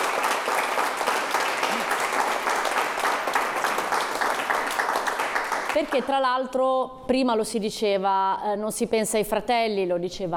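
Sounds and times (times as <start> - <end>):
audience applause: 0.0 - 6.1
speech: 5.8 - 10.3.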